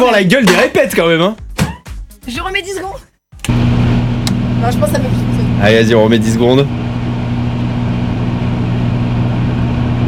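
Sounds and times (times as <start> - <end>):
speech: 0.0 - 1.4, 2.3 - 3.7, 4.6 - 6.8
microwave oven humming: 3.4 - 10.0.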